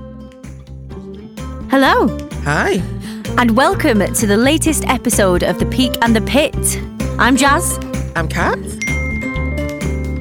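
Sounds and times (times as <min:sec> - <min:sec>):
speech: 0:01.7 - 0:08.8
bright tinkling phone notification chime: 0:08.8 - 0:10.1.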